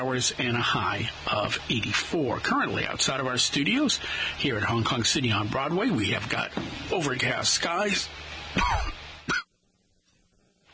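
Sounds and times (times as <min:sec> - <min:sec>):
speech: 0:00.0 - 0:09.0
person coughing into a studio microphone during a weather update: 0:08.6 - 0:09.5.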